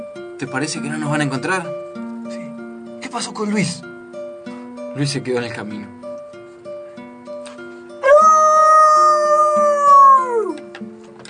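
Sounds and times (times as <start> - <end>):
speech: 0.4 - 1.8, 3.1 - 3.9, 5.0 - 6.0
neighbour's loose dog howling: 8.0 - 10.6.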